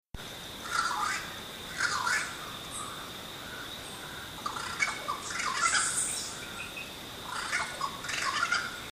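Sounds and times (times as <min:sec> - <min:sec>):
Corvus jamaicensis calling in Windsor Jamaica: 0:00.6 - 0:08.9.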